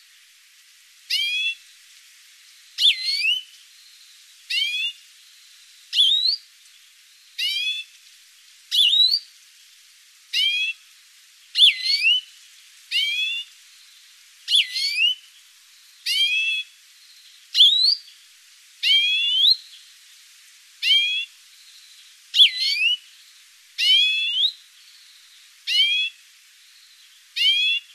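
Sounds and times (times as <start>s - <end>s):
European greenfinch buzzy and curling whistled calls: 1.1s - 1.6s, 2.8s - 6.5s, 7.1s - 7.9s, 8.7s - 9.3s, 10.3s - 10.8s, 11.6s - 12.3s, 12.9s - 18.2s, 18.8s - 19.9s, 20.8s - 27.9s.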